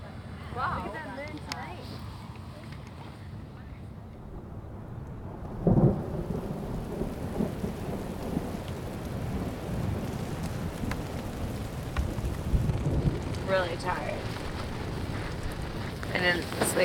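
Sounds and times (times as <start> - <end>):
wind gusts: 0.0 - 16.8
speech: 0.6 - 2.1, 13.5 - 14.1, 16.2 - 16.8
heavy continuous rain: 3.8 - 16.8
deep rolling thunder with sharper cracks: 4.2 - 16.8.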